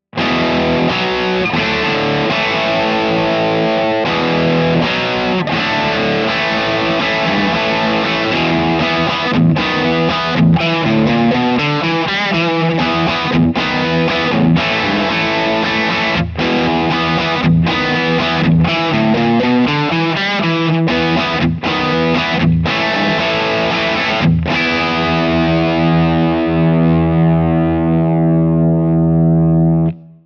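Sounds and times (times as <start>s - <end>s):
rock chords: 0.1s - 30.2s.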